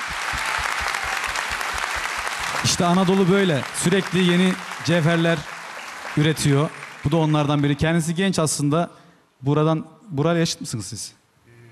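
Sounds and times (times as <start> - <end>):
audience applause for a performer: 0.0 - 7.9
speech: 2.6 - 5.5, 6.2 - 11.2.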